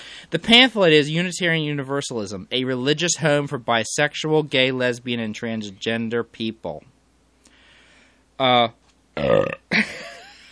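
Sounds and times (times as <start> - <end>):
speech: 0.3 - 6.9, 8.4 - 10.0
person belching loudly: 9.2 - 9.9.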